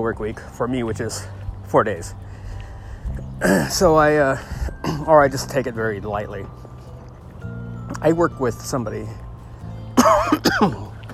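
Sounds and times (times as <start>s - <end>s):
speech: 0.0s - 2.4s, 3.4s - 6.7s, 8.0s - 9.2s, 10.1s - 10.9s
raspy throaty cough: 10.0s - 10.8s.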